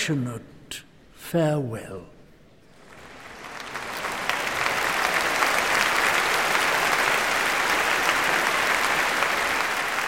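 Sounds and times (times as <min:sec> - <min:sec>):
speech: 0:00.0 - 0:02.2
faint crowd noise: 0:02.7 - 0:10.0
large audience roaring applause: 0:02.7 - 0:10.0.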